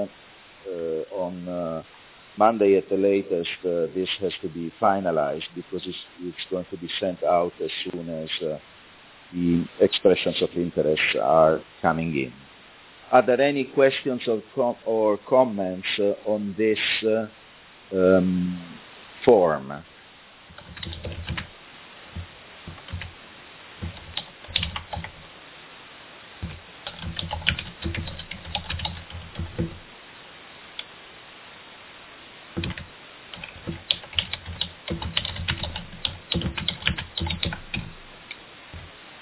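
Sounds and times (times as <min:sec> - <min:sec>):
speech: 0:01.3 - 0:08.7, 0:09.3 - 0:12.5, 0:13.1 - 0:19.9
people typing on computer keyboards: 0:20.5 - 0:21.5, 0:22.2 - 0:23.2, 0:23.8 - 0:25.3, 0:26.4 - 0:29.9, 0:32.6 - 0:38.1.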